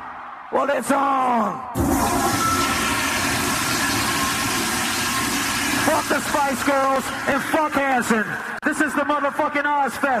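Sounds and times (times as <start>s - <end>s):
speech: 0.5s - 2.1s, 5.8s - 10.1s
toilet flushing: 1.8s - 8.6s.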